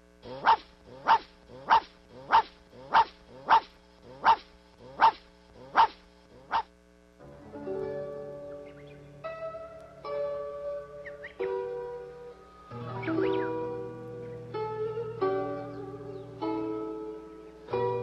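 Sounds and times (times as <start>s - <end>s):
busier sound: 0.0s - 18.0s
small dog barking: 0.3s - 6.7s.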